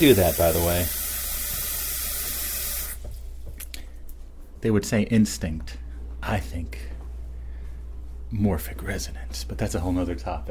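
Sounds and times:
speech: 0.0s - 1.0s, 4.6s - 6.9s, 8.3s - 10.4s
tap water filling a sink for a cat to drink from: 0.0s - 3.2s.

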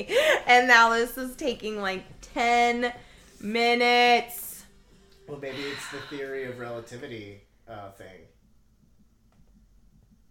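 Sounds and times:
speech: 0.0s - 4.4s, 5.3s - 8.3s
heartbeat thumping in lub-dub beats: 8.3s - 10.2s.

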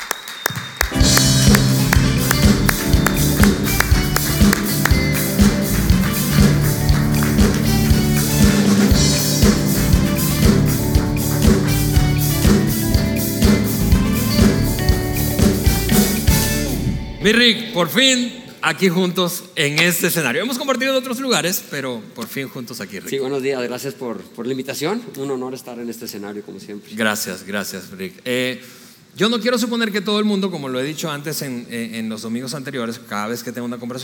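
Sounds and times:
crowd applauding: 0.0s - 16.3s
loud upbeat music: 0.8s - 17.7s
speech: 17.3s - 34.0s.

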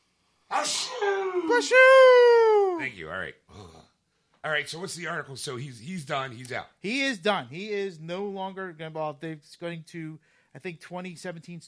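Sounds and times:
person sneezing: 0.5s - 1.4s
speech: 0.6s - 3.7s, 4.4s - 11.6s.

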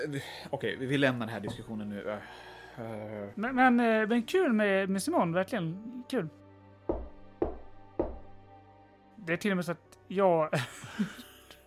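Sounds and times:
speech: 0.0s - 6.4s, 9.2s - 11.2s
knocking on a door: 6.9s - 8.4s
laughter: 10.6s - 11.4s.

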